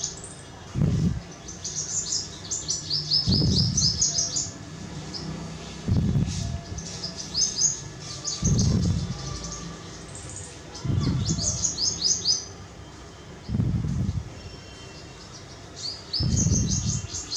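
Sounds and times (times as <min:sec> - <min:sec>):
purple sunbird high sharp twittering chirps: 0:00.0 - 0:17.3
low dull thumps: 0:00.8 - 0:01.3, 0:03.2 - 0:04.2, 0:05.8 - 0:06.8, 0:08.4 - 0:09.4, 0:10.8 - 0:11.6, 0:13.5 - 0:14.5, 0:16.2 - 0:17.1.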